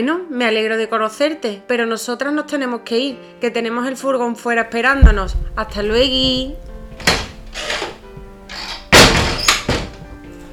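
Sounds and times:
speech: 0.0 - 7.2
door slamming shut: 4.7 - 10.5
quiet bumps: 4.7 - 10.5
rustling movements: 4.7 - 10.5
soft knocks: 4.7 - 10.5.

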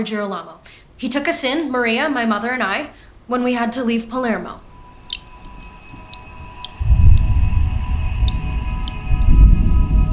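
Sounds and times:
speech: 0.0 - 4.6
scattered sharp rain drops pattering: 4.2 - 10.1
heavier low wash of rainfall: 5.0 - 10.1.

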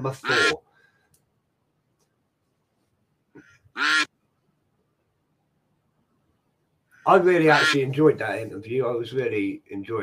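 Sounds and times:
speech: 0.0 - 0.6, 7.1 - 10.0
duck quacking: 0.1 - 0.6, 3.4 - 4.1, 7.4 - 7.9.

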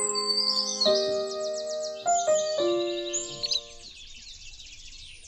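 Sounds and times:
brief tonal musical opening: 0.0 - 3.8
buff-breasted flycatcher Empidonax fulvifrons chirping: 0.0 - 3.8.

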